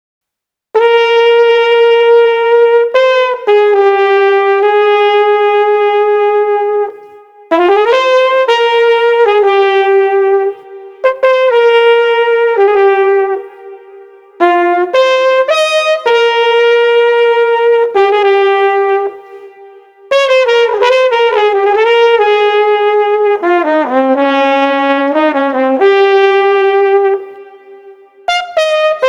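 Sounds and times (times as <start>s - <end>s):
tranquil flugelhorn playing in a street: 0.8s - 29.0s.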